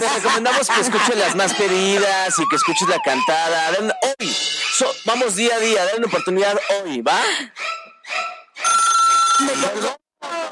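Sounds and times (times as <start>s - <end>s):
laughter: 0.0s - 2.8s, 9.7s - 10.5s
speech: 0.0s - 8.8s, 9.4s - 10.0s
telephone ringing with an incoming call: 8.6s - 10.0s.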